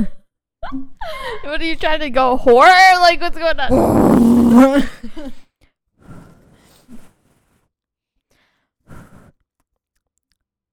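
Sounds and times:
speech: 0.0s - 5.3s
drawn-out vocal sound: 3.7s - 4.8s.

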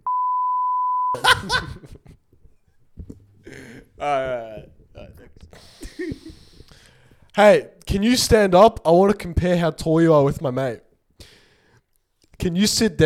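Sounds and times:
censor bleep tone over a swear word: 0.0s - 1.2s
speech: 1.2s - 2.2s, 3.5s - 4.7s, 7.4s - 11.3s, 12.4s - 13.0s
people laughing: 1.2s - 2.3s, 3.0s - 6.8s.

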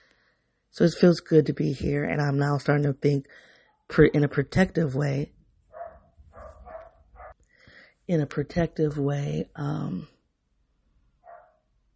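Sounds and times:
speech: 0.8s - 5.4s, 8.1s - 10.2s
dog barks: 5.7s - 7.4s, 11.2s - 11.6s.

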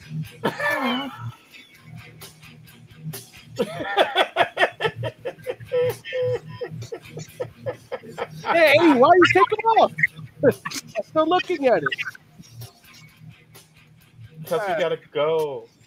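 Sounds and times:
speech: 0.1s - 1.6s, 9.0s - 12.2s, 14.5s - 15.7s
people chuckling: 3.6s - 12.2s
puppy whimpering and yipping: 9.2s - 11.2s.

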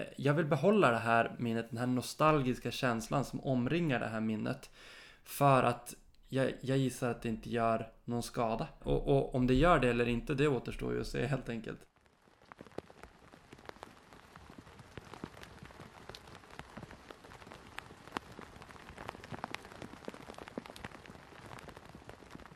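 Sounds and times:
speech: 0.0s - 11.9s
rain falling on tent canvas: 8.7s - 22.5s.

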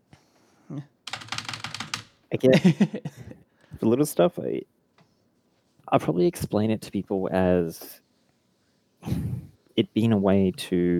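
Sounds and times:
speech: 0.7s - 1.0s, 2.3s - 4.7s, 5.9s - 8.0s, 9.0s - 10.9s
keyboard typing of notes: 1.0s - 2.2s.

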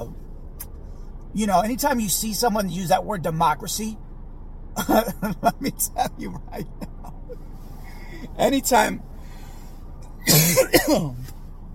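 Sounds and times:
speech: 1.4s - 4.0s, 4.9s - 6.8s, 8.4s - 9.1s, 10.6s - 11.2s
harsh raspy cough: 10.3s - 11.2s.

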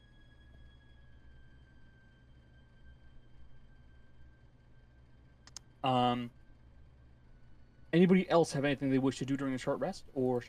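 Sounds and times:
faint steady electronic hum: 0.0s - 10.4s
sharp clicks from a necklace: 5.4s - 5.7s
speech: 5.8s - 6.4s, 7.9s - 10.4s.

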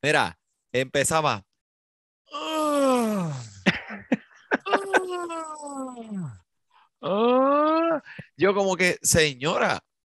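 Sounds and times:
speech: 0.0s - 1.5s, 7.0s - 9.9s
person imitating a woman groaning as she sits on a chair: 2.3s - 3.7s, 4.6s - 6.4s, 7.0s - 8.2s
laughter: 3.7s - 5.4s.

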